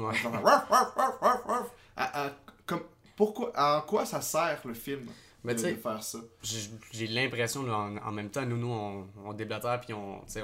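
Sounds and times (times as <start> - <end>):
speech: 0.0 - 10.4
man's voice mimicking a barking dog in a film scene: 0.1 - 1.8.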